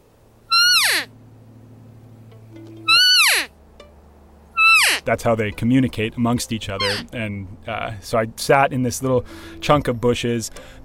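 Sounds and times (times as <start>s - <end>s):
quiet hum: 0.0s - 10.8s
elk cow call imitating a female elk: 0.5s - 1.1s, 2.9s - 3.5s, 4.6s - 5.1s, 6.8s - 7.1s
speech: 5.0s - 10.8s.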